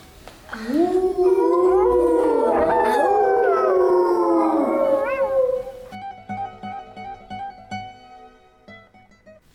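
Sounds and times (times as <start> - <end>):
speech: 0.6 - 0.8
eerie werewolf howl in a forest at night: 0.6 - 5.9.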